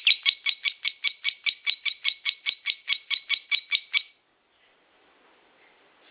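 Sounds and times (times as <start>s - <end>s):
national champion lovebird chirping: 0.0s - 4.2s.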